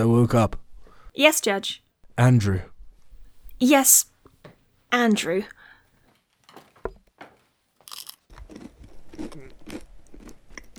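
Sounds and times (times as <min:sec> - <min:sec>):
speech: 0:00.0 - 0:00.6, 0:01.2 - 0:02.7, 0:03.6 - 0:04.1, 0:04.9 - 0:05.6
person biting into and chewing a rye bread roll: 0:07.8 - 0:10.7.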